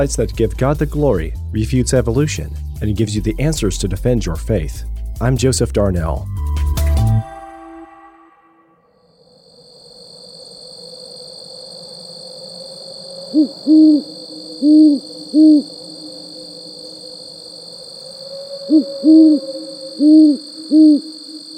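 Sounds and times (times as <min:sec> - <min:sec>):
speech: 0:00.0 - 0:06.8, 0:13.4 - 0:15.8, 0:18.7 - 0:21.2
thin high-pitched nighttime drone: 0:06.2 - 0:09.1, 0:13.0 - 0:21.5
owl hooting at night: 0:11.8 - 0:21.5.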